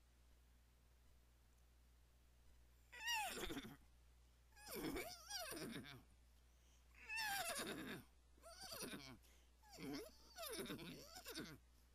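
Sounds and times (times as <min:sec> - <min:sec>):
faint low hum: 0:00.0 - 0:11.9
horse whinnying: 0:03.0 - 0:03.8, 0:04.6 - 0:06.0, 0:07.1 - 0:09.1, 0:09.7 - 0:11.6.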